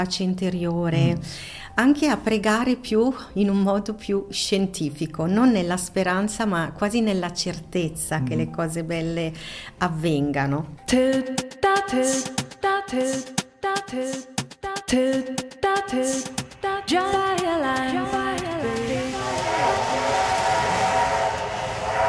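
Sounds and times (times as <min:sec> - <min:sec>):
speech: 0:00.0 - 0:20.3
steam train chugging: 0:18.0 - 0:22.0
loud steady rumbling: 0:18.4 - 0:22.0.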